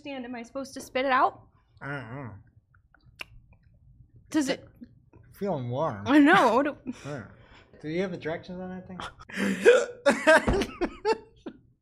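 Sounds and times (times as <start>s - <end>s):
speech: 0.0s - 2.5s, 4.3s - 4.8s, 5.4s - 11.2s
voiced run of hiccups: 9.4s - 10.0s.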